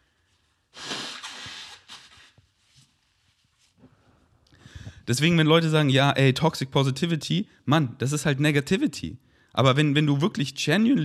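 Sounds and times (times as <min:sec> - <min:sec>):
quiet sniffling: 0:00.7 - 0:02.4
person blowing nose: 0:00.7 - 0:02.6
speech: 0:05.1 - 0:11.0.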